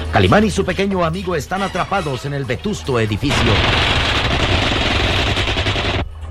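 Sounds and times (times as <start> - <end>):
speech: 0.2 - 3.9
rapid bursts of automatic weapons gunfire: 3.3 - 6.1.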